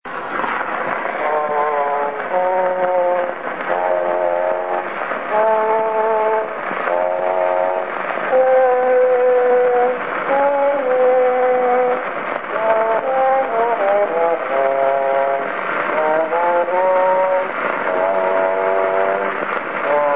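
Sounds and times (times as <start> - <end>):
trombone on a Berliner cylinder recording: 0.1 - 20.1.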